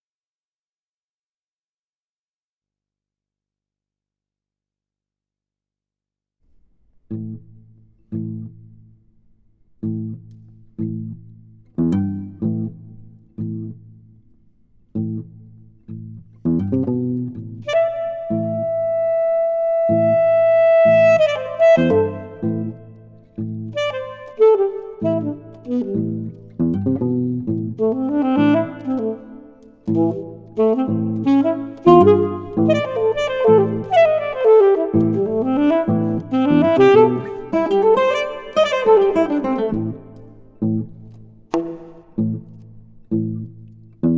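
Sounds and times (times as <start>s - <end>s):
alto saxophone and guitar sonata: 9.8s - 14.0s, 15.0s - 44.1s.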